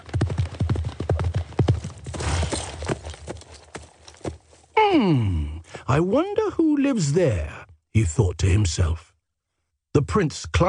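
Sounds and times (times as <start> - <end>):
horse hooves clip-clopping while ridden: 0.0 - 4.7
speech: 4.9 - 9.1, 10.0 - 10.6.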